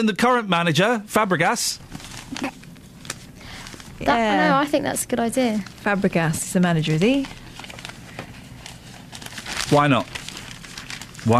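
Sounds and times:
speech: 0.0 - 2.6, 4.0 - 7.4, 9.7 - 10.2
newspaper back pages folded and creased into paper aeroplanes: 1.9 - 4.1, 7.0 - 11.3.

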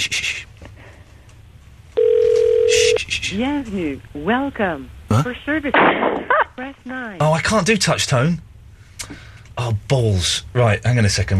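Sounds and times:
telephone ringing on the line: 2.0 - 3.0
speech: 3.3 - 8.5, 9.1 - 11.3.

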